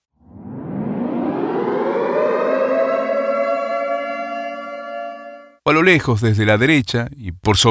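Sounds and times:
civil-defense air raid siren wailing as a nuclear attack warning: 0.2s - 5.6s
speech: 5.7s - 7.6s.

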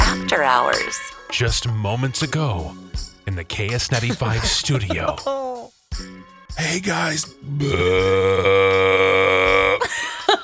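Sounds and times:
speech: 0.3s - 9.2s
laughter: 3.7s - 5.7s, 9.8s - 10.4s
short vocal sounds: 6.6s - 9.8s
long loud burp after eating a small egg bake: 7.4s - 9.8s.

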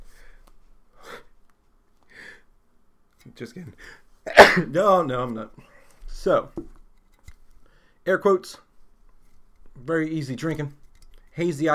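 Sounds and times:
speech: 3.3s - 6.8s, 8.0s - 8.6s, 9.8s - 10.8s, 11.4s - 11.7s
person gasping and sneezing: 4.3s - 4.7s.

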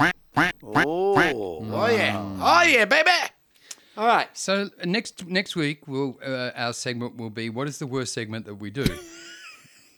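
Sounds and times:
duck quacking: 0.0s - 1.3s
speech: 0.0s - 3.3s, 4.0s - 9.3s.

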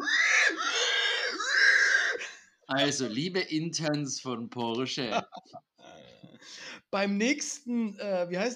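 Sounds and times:
person imitating a pig squeal as a car airbag deploying joke sound: 0.0s - 3.0s
speech: 2.7s - 5.6s, 6.9s - 8.5s
laughter: 5.0s - 5.6s.

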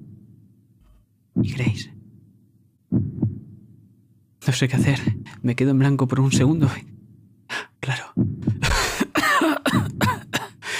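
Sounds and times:
speech: 1.4s - 2.0s, 4.5s - 6.9s
person faking a severe coughing fit: 8.6s - 10.6s.

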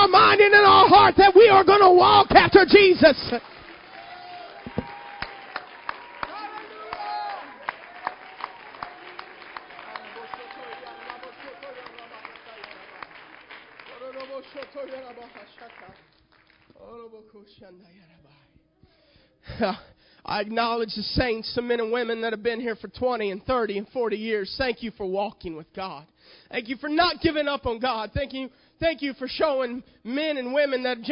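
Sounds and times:
congregation clapping hands during a church service: 0.0s - 16.9s
speech: 1.0s - 3.6s, 16.8s - 18.4s, 19.4s - 31.1s.

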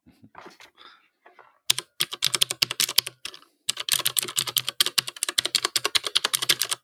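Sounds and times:
typing on a mechanical keyboard with blue switches: 1.7s - 6.8s.

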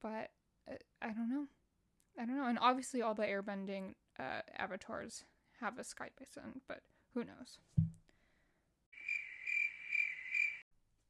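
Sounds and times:
speech: 0.0s - 1.6s, 2.2s - 7.9s
crickets chirping: 9.0s - 10.6s.

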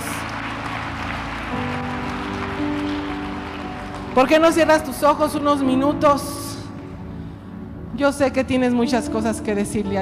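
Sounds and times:
large crowd applauding: 0.0s - 5.5s
speech: 4.2s - 6.4s, 8.0s - 9.9s.

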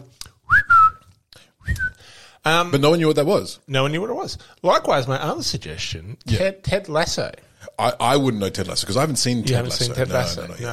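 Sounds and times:
person whistling a short tune: 0.5s - 2.0s
speech: 2.5s - 10.7s.

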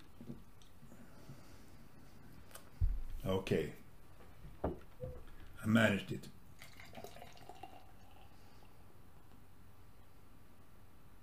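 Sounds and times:
speech: 3.2s - 3.8s, 5.6s - 6.4s
beer pouring into a glass: 6.5s - 8.8s.

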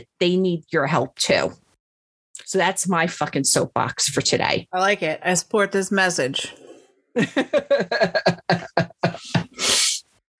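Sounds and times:
speech: 0.0s - 1.6s, 2.4s - 9.5s
laughter: 7.2s - 9.6s
short voiced vocal bursts: 8.2s - 10.2s
person with a cold sniffling: 8.5s - 10.1s.

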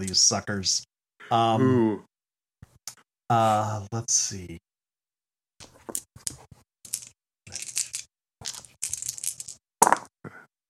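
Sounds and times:
speech: 0.0s - 2.1s, 2.9s - 4.6s
dice clattering across a hard surface: 5.6s - 10.1s.

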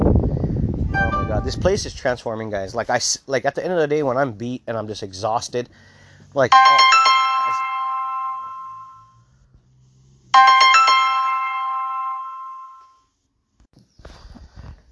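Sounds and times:
chiming melodic phone ringtone for an incoming call: 1.0s - 1.6s, 6.5s - 9.1s, 10.4s - 12.9s
speech: 1.4s - 7.1s.

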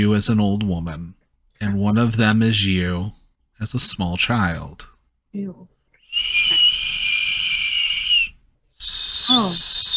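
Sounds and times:
speech: 0.0s - 6.6s, 9.3s - 9.8s
long steady high-pitched breathy whistles: 6.0s - 9.9s.

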